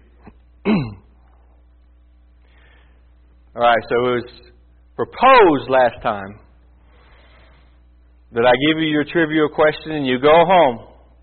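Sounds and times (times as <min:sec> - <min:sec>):
throat clearing: 0:00.2 - 0:01.3
harsh cough: 0:00.6 - 0:01.1
speech: 0:03.6 - 0:06.4, 0:08.3 - 0:10.9.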